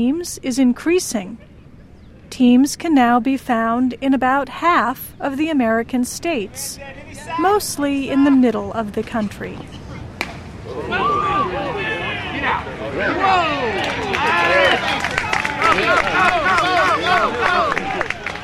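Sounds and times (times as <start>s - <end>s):
speech: 0.0s - 1.6s, 2.3s - 9.8s
outdoor crowd cheering and shouting at vintage baseball game: 10.6s - 18.4s.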